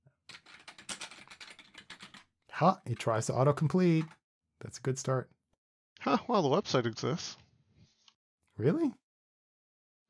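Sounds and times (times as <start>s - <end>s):
typing on a computer keyboard: 0.3s - 2.3s
speech: 2.6s - 5.4s, 6.0s - 7.4s, 8.6s - 9.0s.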